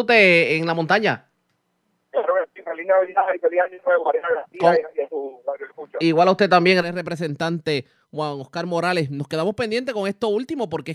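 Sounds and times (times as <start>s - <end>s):
speech: 0.0s - 1.3s, 2.8s - 10.9s
voice over a narrowband cell phone connection: 2.2s - 6.0s.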